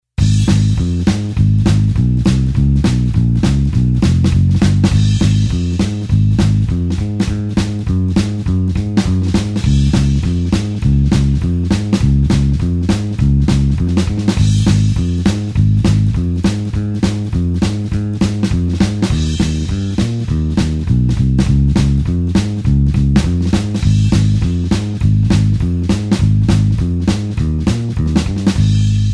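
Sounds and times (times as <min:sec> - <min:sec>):
blues bassline in A flat: 0:00.2 - 0:29.1.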